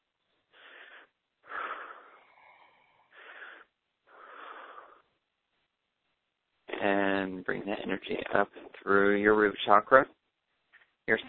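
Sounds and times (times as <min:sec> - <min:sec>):
deep inhaling breaths during a guided meditation: 0:00.5 - 0:05.2
speech: 0:07.4 - 0:10.2, 0:11.1 - 0:11.2.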